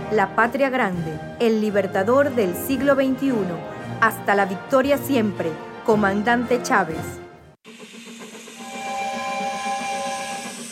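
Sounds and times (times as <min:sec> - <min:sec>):
speech: 0:00.1 - 0:07.2
hissing steam of a steam train: 0:07.6 - 0:10.7
steam train whistle blast: 0:08.0 - 0:10.7.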